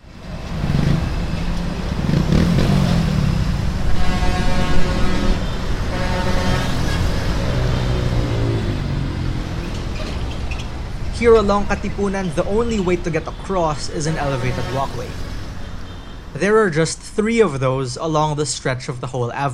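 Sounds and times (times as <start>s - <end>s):
constant low rumble of busy street traffic: 0.0s - 19.5s
cars and other vehicles zipping past on a busy street: 0.1s - 11.5s
speech: 11.2s - 15.3s, 16.4s - 19.5s.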